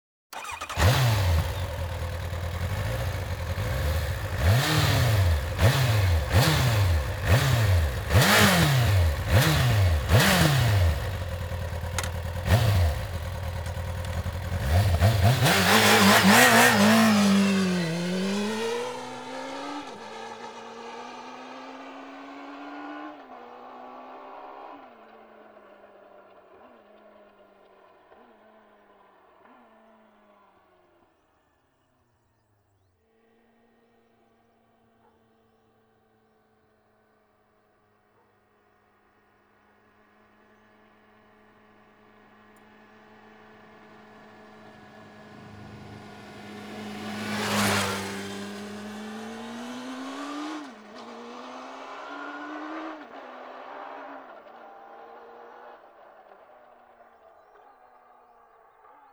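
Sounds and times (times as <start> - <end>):
Kawasaki ZX-9R motorcycle engine: 0.3 - 22.8, 41.9 - 56.3.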